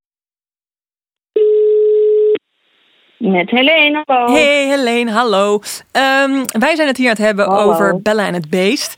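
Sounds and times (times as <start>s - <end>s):
ringback tone of an outgoing telephone call: 1.4s - 2.4s
speech: 3.3s - 8.9s.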